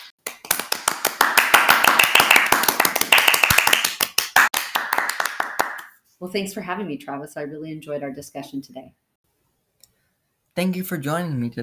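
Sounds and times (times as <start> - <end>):
small group applauding with hand clapping: 0.0 - 6.0
speech: 6.2 - 9.0, 10.6 - 11.6.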